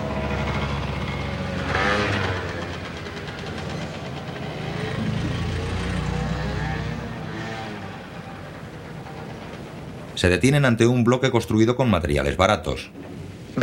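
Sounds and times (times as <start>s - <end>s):
motorcycle carrying two people riding along a road: 0.0s - 10.2s
speech: 10.2s - 13.6s.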